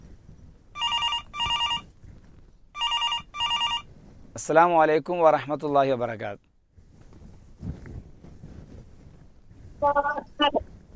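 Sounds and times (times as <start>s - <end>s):
telephone ringing for an incoming call: 0.8s - 1.9s, 2.8s - 3.9s
speech: 4.4s - 6.5s.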